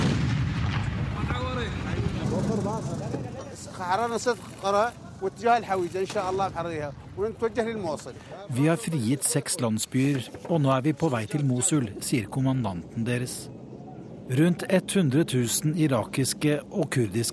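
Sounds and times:
mortar shell fired from a launch tube during fighting near Mosul: 0:00.0 - 0:03.2
speech: 0:03.8 - 0:13.6, 0:14.3 - 0:17.3.

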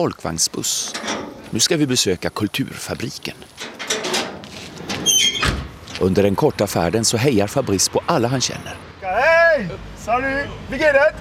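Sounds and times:
speech: 0:00.0 - 0:03.7, 0:06.0 - 0:11.1
garage door being opened with a scraping rumble: 0:00.8 - 0:01.7, 0:03.6 - 0:06.0.

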